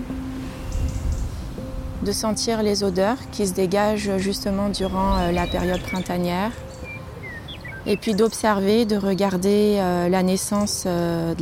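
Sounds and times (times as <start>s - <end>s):
birds chirping in a garden: 0.0s - 11.4s
low outdoor rumble: 0.0s - 11.4s
speech: 2.0s - 6.6s, 7.8s - 11.4s.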